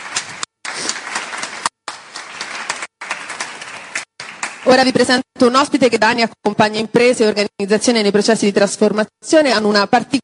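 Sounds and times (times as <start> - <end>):
audience applause: 0.0 - 4.7
speech: 4.6 - 10.2.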